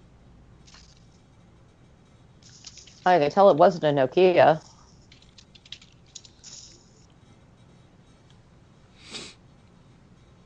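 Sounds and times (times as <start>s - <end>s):
speech: 3.1s - 4.7s
typing on a computer keyboard: 5.1s - 6.8s
breathy sniff: 9.0s - 9.4s.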